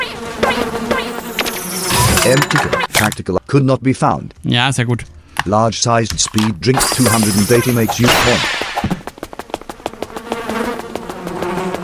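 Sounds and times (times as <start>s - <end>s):
swarm of bees buzzing: 0.0s - 2.9s, 6.8s - 11.8s
speech: 2.2s - 9.0s.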